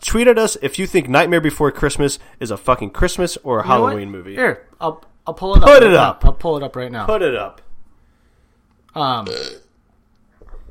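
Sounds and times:
speech: 0:00.1 - 0:07.6, 0:09.0 - 0:09.6
burp: 0:09.2 - 0:09.7.

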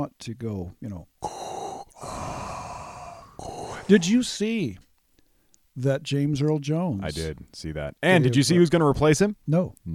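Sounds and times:
speech: 0:00.0 - 0:01.3, 0:03.4 - 0:04.9, 0:05.8 - 0:09.9
person imitating heavy rasping breathing: 0:01.2 - 0:04.4.

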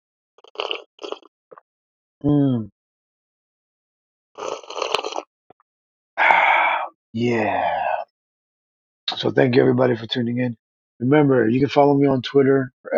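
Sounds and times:
noisy slurping sips of hot coffee from a mug: 0:00.4 - 0:01.3, 0:04.4 - 0:05.3
speech: 0:02.2 - 0:02.7, 0:07.1 - 0:07.8, 0:09.2 - 0:12.9
brief voiced sigh of satisfaction: 0:06.2 - 0:08.0.

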